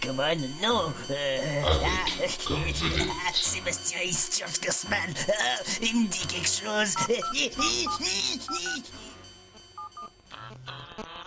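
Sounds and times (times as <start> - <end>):
speech: 0.0 - 9.2
telephone ringing with electronic tone bursts: 6.9 - 8.8, 9.8 - 10.2.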